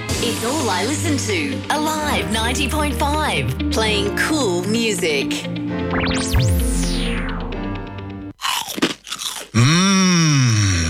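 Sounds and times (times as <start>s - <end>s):
speech: 0.2s - 6.9s
swooping synthesized tones: 5.8s - 7.8s
sweeping electronic effects: 5.8s - 8.0s
crunching bites on slow-cooked crispy pork crackling: 8.4s - 10.0s.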